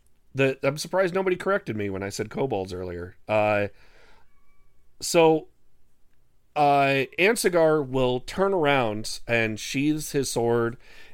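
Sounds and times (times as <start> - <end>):
speech: 0.4 - 3.9, 5.0 - 5.5, 6.6 - 11.0
cat meowing: 4.2 - 4.8.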